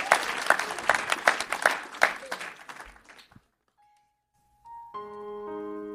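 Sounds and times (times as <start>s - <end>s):
crowd of people applauding: 0.0s - 3.5s.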